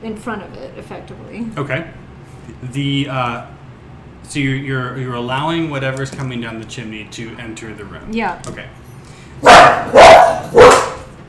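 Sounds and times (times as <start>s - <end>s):
speech: 0.0s - 3.6s, 4.2s - 8.8s
dogs barking indoors: 9.4s - 11.2s.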